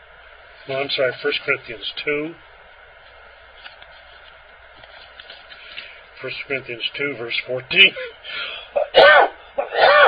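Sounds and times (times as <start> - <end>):
speech: 0.7 - 2.5, 6.2 - 10.0
person clearing throat: 8.0 - 10.0
person coughing: 8.0 - 10.0.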